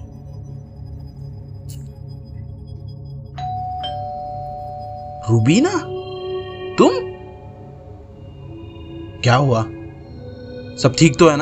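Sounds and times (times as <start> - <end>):
low steady hum: 0.0 - 11.4
electronic doorbell chiming two-note ding-dong: 3.4 - 7.2
speech: 5.3 - 6.0, 6.8 - 7.1, 9.2 - 9.8, 10.8 - 11.4.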